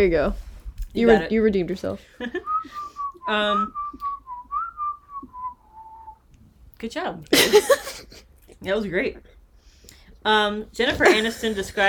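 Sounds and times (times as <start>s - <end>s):
speech: 0.0s - 4.1s, 6.8s - 9.3s, 10.2s - 11.8s
person whistling a simple tune: 2.4s - 6.2s.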